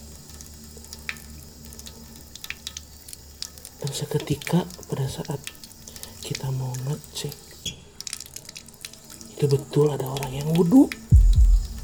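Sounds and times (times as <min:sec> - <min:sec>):
water running from a tap: 0:00.0 - 0:11.8
speech: 0:03.8 - 0:05.6, 0:06.4 - 0:07.5, 0:09.4 - 0:11.0
low hum: 0:11.1 - 0:11.8.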